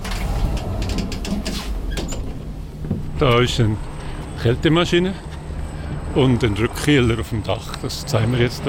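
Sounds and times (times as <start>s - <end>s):
lift doors and drive mechanism clattering and clicking: 0.0s - 4.3s
lift in motion mechanical rumble: 0.0s - 8.6s
speech: 3.2s - 5.3s, 6.1s - 8.6s.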